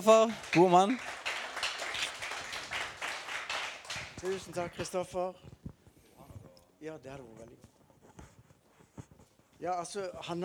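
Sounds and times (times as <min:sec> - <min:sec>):
speech: 0:00.0 - 0:01.2, 0:04.2 - 0:05.6, 0:06.8 - 0:07.7, 0:09.6 - 0:10.4
small audience applause: 0:00.0 - 0:04.9.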